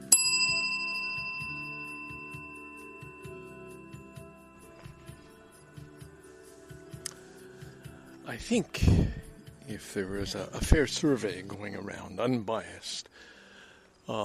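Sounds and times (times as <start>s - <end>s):
bicycle bell ringing: 0.0s - 5.2s
speech: 8.3s - 13.3s.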